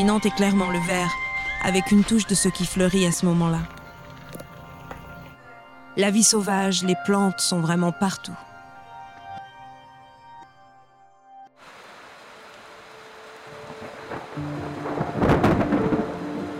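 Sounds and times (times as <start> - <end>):
speech: 0.0 - 3.8, 6.0 - 8.5
soft tonal music: 0.0 - 11.5, 12.3 - 16.5
heavy rain in the jungle from an intense hurricane storm: 11.6 - 16.5
loud crack and rumble of thunder from lightning striking near cabins: 13.7 - 16.5.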